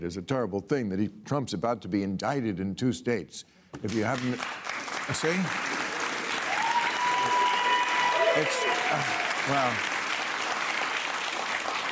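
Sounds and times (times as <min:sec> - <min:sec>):
speech: 0:00.0 - 0:05.8, 0:08.4 - 0:10.0
studio audience applause: 0:03.9 - 0:11.9.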